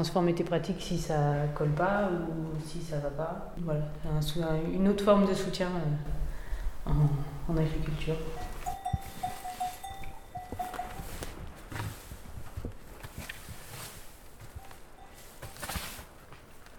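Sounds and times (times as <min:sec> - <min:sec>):
speech: 0:00.0 - 0:06.2, 0:06.8 - 0:08.5
cows and heifers shuffling in a livestock barn: 0:07.7 - 0:16.7
faint bell-like ringing: 0:08.1 - 0:11.5, 0:14.4 - 0:16.2
cattle hoof thuds: 0:08.4 - 0:16.7.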